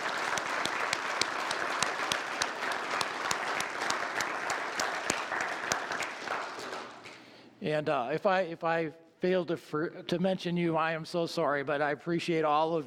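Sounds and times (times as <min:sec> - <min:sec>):
church audience clapping in a round of applause for helpers: 0:00.0 - 0:07.3
speech: 0:07.6 - 0:12.8.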